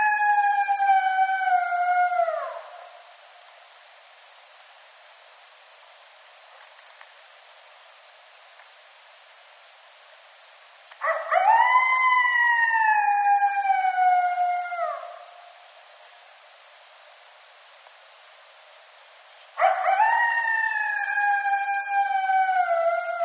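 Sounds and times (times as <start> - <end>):
coyote howling: 0.0 - 3.0, 11.0 - 15.4, 19.6 - 23.2.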